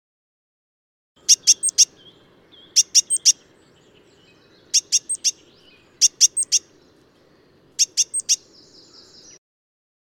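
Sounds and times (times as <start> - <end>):
soft background noise: 1.2 - 9.2
great tit giving sharp high ringing notes: 1.2 - 9.4.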